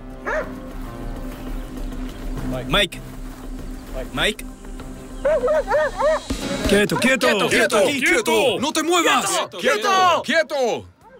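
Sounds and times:
trained police tracking dog barking: 0.2 - 0.6, 5.2 - 6.3
speech: 2.6 - 3.2, 4.0 - 4.6, 5.2 - 10.9.

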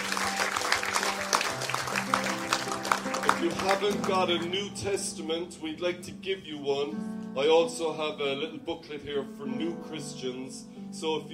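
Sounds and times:
crowd applauding: 0.0 - 4.6
speech: 3.4 - 11.3.

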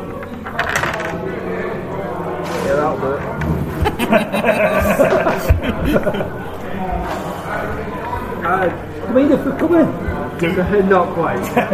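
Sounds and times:
low murmur of voices: 0.0 - 11.7
two dice clattering and tumbling across a table: 0.2 - 1.3
laughter: 3.6 - 11.7
speech: 4.1 - 4.8, 5.8 - 6.5, 8.5 - 11.7.

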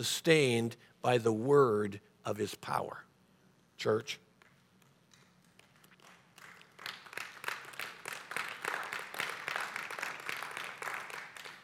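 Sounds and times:
speech: 0.0 - 3.1, 3.8 - 4.2
sparse polite golf clap from audience: 4.4 - 11.6.

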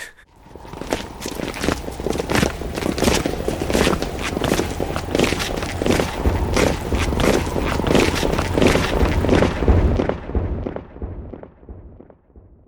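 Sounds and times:
group's loose footsteps crunching sound effect: 0.4 - 10.1.

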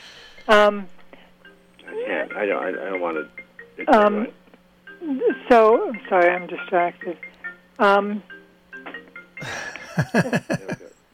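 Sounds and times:
speech: 0.5 - 1.0, 2.0 - 4.4, 5.0 - 8.3, 9.4 - 10.9
phone ringing with loud bright electronic burst: 1.4 - 9.8
laughter: 9.4 - 10.9.

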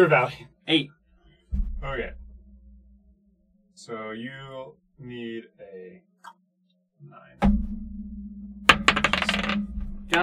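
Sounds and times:
speech: 0.0 - 2.2, 3.8 - 6.4, 9.4 - 10.2
dice clattering and rolling on a hard surface: 8.7 - 9.6.

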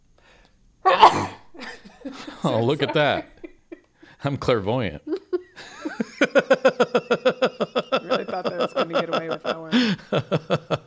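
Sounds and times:
person sneezing forcefully: 0.9 - 1.6
laughter: 1.6 - 4.0, 5.1 - 10.8
speech: 2.0 - 3.4, 4.2 - 5.1, 6.2 - 7.6, 8.4 - 10.8.

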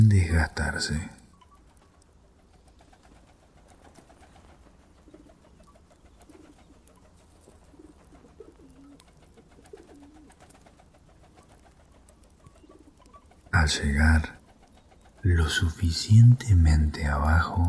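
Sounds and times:
speech: 0.0 - 1.2, 13.6 - 14.4, 15.2 - 17.6
steady rumble: 0.0 - 9.6, 13.3 - 17.6
faint ticking: 0.0 - 17.6
pigeons cooing: 0.0 - 17.6
scattered bird sounds: 0.0 - 17.6.

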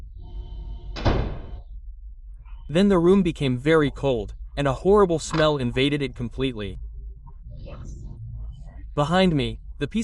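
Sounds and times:
steady low hum: 0.0 - 10.0
door closing in a room: 1.0 - 1.6
speech: 2.7 - 6.8, 9.0 - 10.0.

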